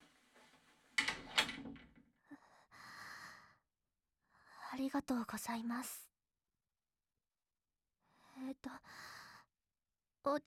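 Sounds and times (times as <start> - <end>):
door pushed shut by a customer: 0.0 - 2.0
speech: 4.8 - 6.1, 8.5 - 9.2, 10.2 - 10.4.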